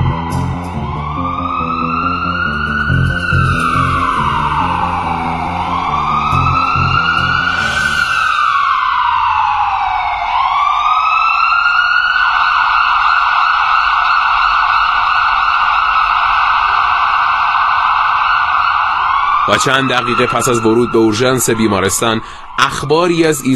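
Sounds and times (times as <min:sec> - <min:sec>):
low ambulance engine rumble: 0:00.0 - 0:08.0
ambulance siren wailing up and down: 0:00.0 - 0:23.5
speech: 0:19.6 - 0:23.5.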